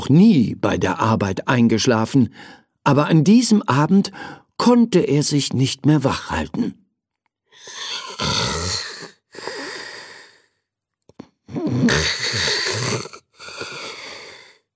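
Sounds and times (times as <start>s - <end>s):
speech: 0.1s - 6.8s, 7.6s - 8.6s, 11.8s - 12.5s
loud rasping snoring: 7.6s - 10.5s, 11.5s - 14.7s.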